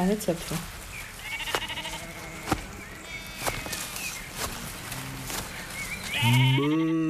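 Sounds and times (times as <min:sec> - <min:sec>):
sheep bleating in a farmyard: 0:01.2 - 0:04.0, 0:06.0 - 0:07.0.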